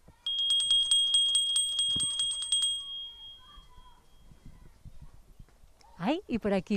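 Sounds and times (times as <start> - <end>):
faint noise: 0.0 - 6.7
small handbell rung at a small Waldorf school: 0.2 - 4.3
speech: 6.1 - 6.7.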